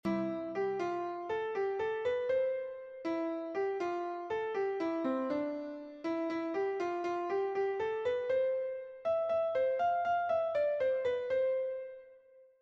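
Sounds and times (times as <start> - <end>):
nursery rhyme played on piano: 0.0 - 12.3.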